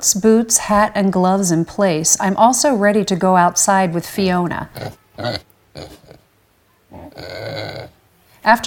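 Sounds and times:
speech: 0:00.0 - 0:06.1, 0:07.0 - 0:08.6
Vietnamese potbelly pig grunting: 0:04.7 - 0:06.3, 0:06.9 - 0:08.0.

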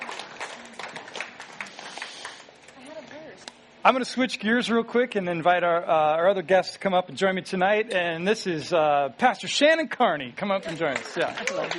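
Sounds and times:
audience applause at a church service: 0:00.0 - 0:02.5, 0:10.7 - 0:11.7
speech: 0:03.8 - 0:11.7.

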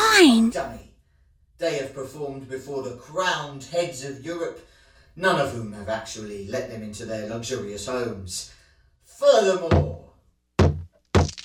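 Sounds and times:
speech: 0:00.2 - 0:00.9, 0:01.6 - 0:08.6, 0:09.2 - 0:10.0
person kicking against a wooden side door: 0:10.6 - 0:11.4.

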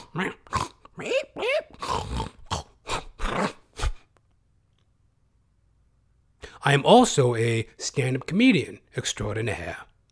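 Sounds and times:
person imitating pig grunts, snorts and squeals: 0:00.0 - 0:04.1
speech: 0:00.1 - 0:01.4, 0:06.7 - 0:09.9.

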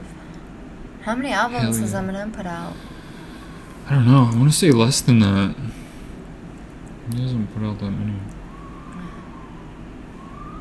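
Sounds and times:
low rumble: 0:00.0 - 0:10.6
speech: 0:01.0 - 0:02.9, 0:03.9 - 0:05.8, 0:07.1 - 0:08.4
emergency vehicle siren wailing outside: 0:01.4 - 0:05.1, 0:07.3 - 0:10.6.

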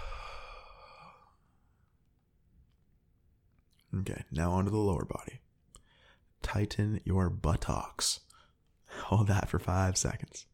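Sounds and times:
long deep breath let out during a muscle-relaxation exercise: 0:00.0 - 0:01.8
speech: 0:03.9 - 0:05.5, 0:06.4 - 0:08.2, 0:08.9 - 0:10.5.

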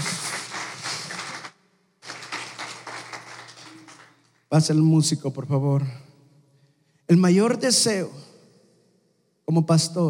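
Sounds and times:
church audience applauding: 0:00.0 - 0:04.4
speech: 0:04.5 - 0:06.1, 0:07.1 - 0:08.3, 0:09.5 - 0:10.0.

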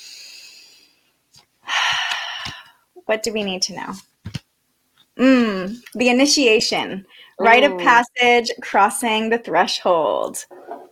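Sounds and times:
deep breath taken before pulling a tarot card: 0:00.0 - 0:02.9
speech: 0:03.1 - 0:04.1, 0:05.2 - 0:10.6.

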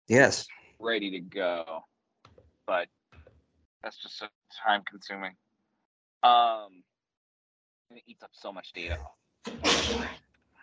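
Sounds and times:
speech: 0:00.1 - 0:01.9, 0:02.7 - 0:03.0, 0:03.8 - 0:05.4, 0:06.2 - 0:06.9, 0:07.9 - 0:10.2
sneeze: 0:09.5 - 0:10.2.

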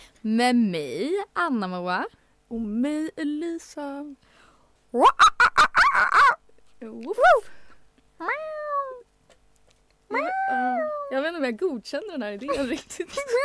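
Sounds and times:
speech: 0:00.2 - 0:04.3, 0:04.9 - 0:05.3, 0:06.0 - 0:07.6, 0:08.2 - 0:08.6, 0:10.1 - 0:13.4
person imitating animal sounds: 0:05.0 - 0:06.5, 0:08.2 - 0:09.1, 0:10.1 - 0:11.2
laughter: 0:12.5 - 0:13.4.

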